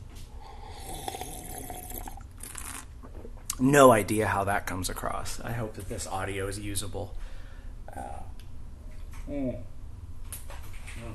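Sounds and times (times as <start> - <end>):
wet slurping sips of hot coffee: 0.4 - 2.9
speech: 3.6 - 7.2, 7.9 - 8.3, 9.3 - 9.7.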